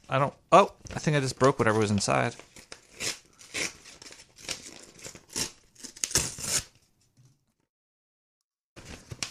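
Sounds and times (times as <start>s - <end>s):
speech: 0.1s - 2.6s
tough hard-to-open packaging being ripped and torn open: 2.5s - 6.8s.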